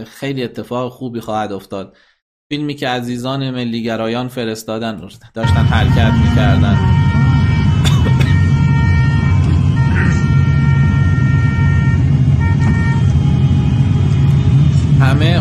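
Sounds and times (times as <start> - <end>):
speech: 0.0 - 7.0
convoy of many cars rumbling toward a prison: 5.4 - 15.3.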